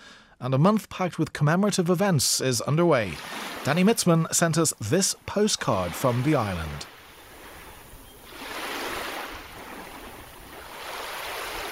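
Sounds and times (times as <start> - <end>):
speech: 0.4 - 6.9
waves lapping on a beach: 3.0 - 11.7.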